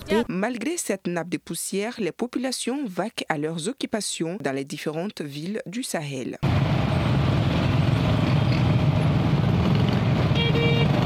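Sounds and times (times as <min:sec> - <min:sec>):
speech: 0:00.1 - 0:06.7
engine rumble from passing cars in a Sahel town street: 0:06.4 - 0:11.0.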